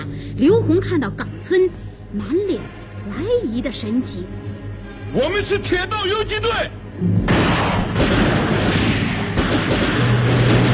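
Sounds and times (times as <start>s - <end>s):
speech: 0.4s - 4.5s, 5.1s - 8.3s
light machine gun fire in a battle: 7.3s - 10.7s.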